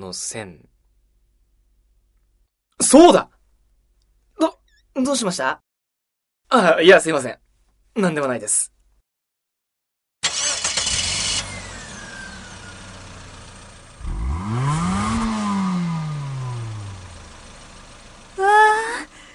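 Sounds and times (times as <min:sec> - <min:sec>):
speech: 0:00.0 - 0:00.7, 0:02.8 - 0:03.4, 0:04.4 - 0:05.6, 0:06.5 - 0:07.4, 0:08.0 - 0:08.8
new-model car engine with two circuits revving with gear changes: 0:10.2 - 0:18.4.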